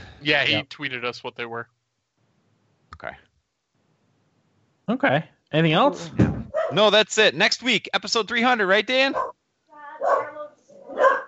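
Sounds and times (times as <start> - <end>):
speech: 0.2 - 1.8, 3.0 - 3.3, 4.9 - 9.4
dog barking: 6.5 - 6.8, 9.1 - 9.3, 10.0 - 11.2.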